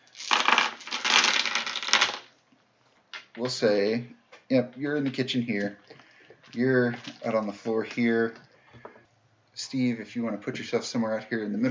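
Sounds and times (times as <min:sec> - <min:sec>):
dice clattering against a tabletop: 0:00.2 - 0:02.3
speech: 0:03.4 - 0:05.9, 0:06.5 - 0:08.4, 0:09.6 - 0:11.6.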